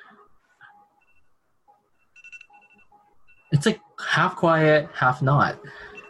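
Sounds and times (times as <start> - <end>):
quiet electronic alarm beeping: 0.6 - 4.0, 5.1 - 6.0
speech: 3.5 - 5.9.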